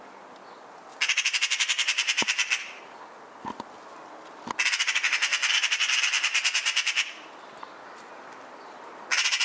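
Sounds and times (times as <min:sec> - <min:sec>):
Eurasian magpie Pica pica harsh chatter: 0:01.0 - 0:02.8, 0:04.6 - 0:07.3, 0:09.1 - 0:09.4.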